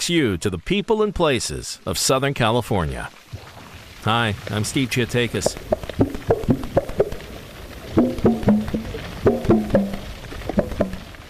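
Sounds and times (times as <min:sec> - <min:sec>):
speech: 0:00.0 - 0:06.1
gray whales calling underwater in Laguna San Ignacio, Baja California, Mexico: 0:05.4 - 0:11.2.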